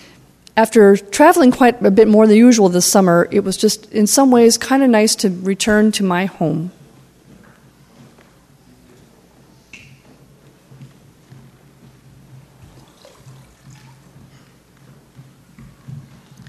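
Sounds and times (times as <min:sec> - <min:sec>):
speech: 0:00.6 - 0:06.8
water pouring from a kitchen faucet: 0:12.8 - 0:14.0.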